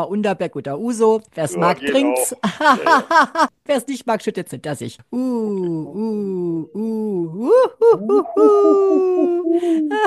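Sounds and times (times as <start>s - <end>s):
speech: 0.0s - 10.0s
laughter: 2.2s - 3.5s, 7.8s - 10.0s
person imitating owl hooting: 5.2s - 10.0s.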